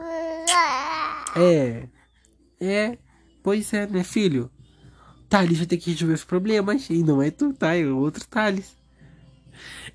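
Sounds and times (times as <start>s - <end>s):
baby boy babbling in sing-song coos: 0.0s - 1.5s
speech: 0.5s - 1.9s, 2.6s - 4.6s, 5.3s - 8.8s, 9.6s - 9.8s.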